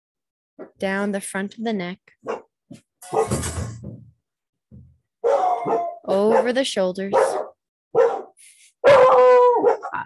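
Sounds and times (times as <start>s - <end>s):
speech: 0.6s - 3.7s, 6.1s - 7.4s
excited dogs barking and howling on a full moon night: 5.2s - 10.0s.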